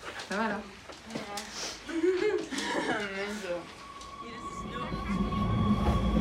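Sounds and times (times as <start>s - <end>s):
laughter: 1.9s - 3.7s
thin sustained electric whine of subway train: 3.4s - 6.1s
subway train riding with low rumble: 3.6s - 6.1s.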